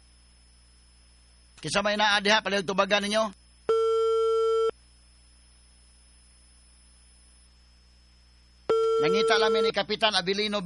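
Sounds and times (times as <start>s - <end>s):
speech: 1.6s - 3.4s, 9.0s - 10.6s
electronic ringback tone on a phone line: 3.7s - 4.7s, 8.7s - 9.8s.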